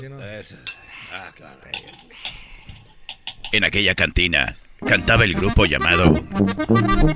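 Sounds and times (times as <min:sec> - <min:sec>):
speech: 0:00.0 - 0:02.8, 0:03.5 - 0:07.1
glasses clinking in a toast: 0:00.6 - 0:01.1, 0:01.7 - 0:03.6.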